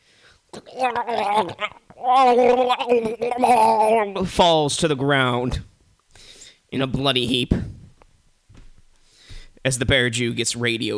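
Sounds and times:
voice imitating gargling as if choking: 0:00.5 - 0:05.6
speech: 0:00.7 - 0:05.7, 0:06.7 - 0:07.7, 0:09.6 - 0:10.9.

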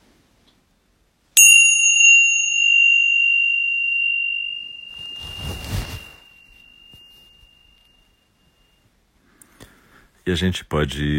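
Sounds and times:
meditation bell struck with a bright clear tone: 0:01.4 - 0:08.9
soft rustling noises: 0:03.6 - 0:08.8
speech: 0:10.3 - 0:11.1.

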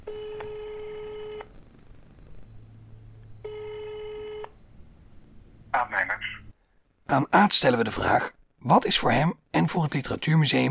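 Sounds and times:
telephone ringback tone as a call is placed: 0:00.0 - 0:01.5, 0:03.4 - 0:04.6
speech: 0:07.1 - 0:10.6.

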